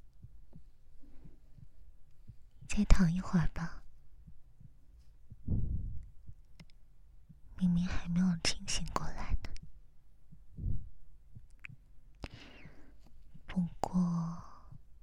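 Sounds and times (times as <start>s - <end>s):
heartbeat: 0.1s - 3.6s, 4.2s - 6.5s, 9.3s - 11.8s
person whispering: 2.6s - 3.9s, 7.6s - 9.6s, 12.2s - 14.8s
speech: 2.8s - 3.8s.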